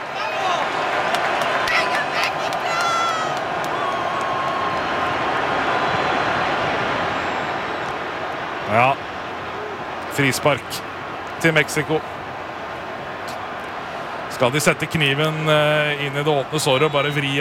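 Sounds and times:
football fans shouting: 0.0 - 17.4
football stadium crowd of home fans roaring at an England versus Mexico match: 0.0 - 17.4
fan whistles: 7.1 - 8.0
speech: 10.2 - 12.2, 14.4 - 17.4.

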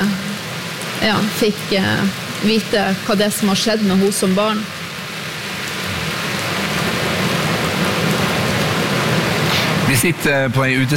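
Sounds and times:
heavy rain pouring on a plastic roof at an outdoor stage outside Nidaros Cathedral: 0.0 - 10.9
speech: 1.0 - 4.8, 10.0 - 10.9.

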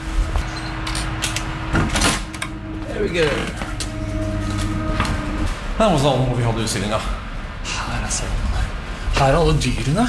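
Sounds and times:
steady low hum: 0.0 - 10.0
door being opened with clunk and rattling: 0.4 - 5.5
speech: 3.0 - 3.7, 5.8 - 8.4, 9.2 - 10.0.

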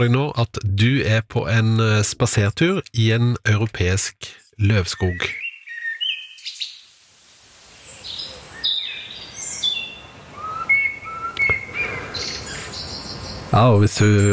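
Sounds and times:
speech: 0.0 - 5.4, 13.5 - 14.3
birds chirping and whistling in a leafy woodland: 4.9 - 6.9, 7.8 - 14.3.

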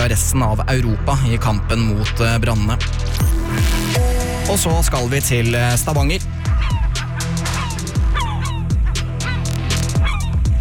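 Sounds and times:
speech: 0.0 - 6.3
gulls calling: 3.9 - 10.5.

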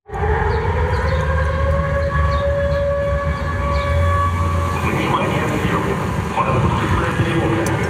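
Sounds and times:
drone air raid alarm siren warning of incoming Ukrainian drones in Sevastopol, Crimea: 0.1 - 7.6.

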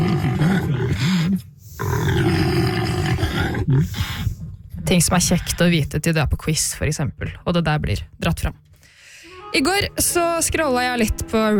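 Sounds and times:
impala antelope roaring grunts: 0.0 - 4.4
speech: 4.9 - 8.7, 9.5 - 11.5.

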